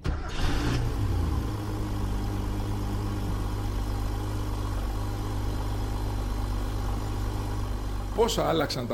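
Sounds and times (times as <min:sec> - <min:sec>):
air-cooled sports car engine starting and idling: 0:00.0 - 0:08.9
speech: 0:08.2 - 0:08.9.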